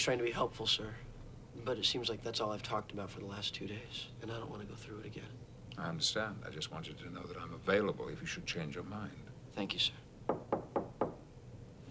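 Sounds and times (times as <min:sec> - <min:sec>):
speech: 0:00.0 - 0:10.0
knocking on a door: 0:10.3 - 0:11.3.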